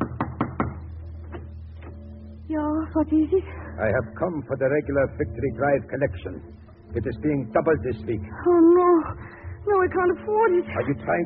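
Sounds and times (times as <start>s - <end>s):
stormtrooper knocking on a wooden front door of a home in Berlin Germany: 0.0s - 0.8s
speech: 2.5s - 11.2s.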